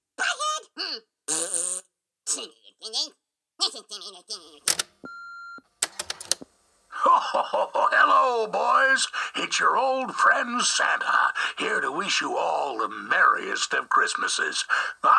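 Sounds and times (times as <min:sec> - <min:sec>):
speech: 0:02.4 - 0:04.9, 0:07.1 - 0:15.1
answering machine beep: 0:04.7 - 0:06.4
laughter: 0:06.9 - 0:08.3.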